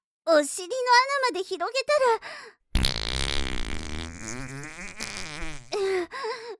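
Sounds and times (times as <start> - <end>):
speech: 0.3 - 2.7, 4.2 - 4.5
long loud fart in a toilet cubicle: 2.8 - 6.1.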